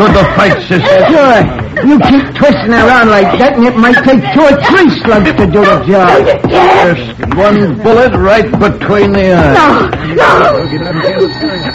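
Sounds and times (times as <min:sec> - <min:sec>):
laughter: 0:00.0 - 0:06.8, 0:09.5 - 0:11.7
speech: 0:00.0 - 0:11.7
telephone ringing with buzzy electric tone: 0:10.4 - 0:11.7.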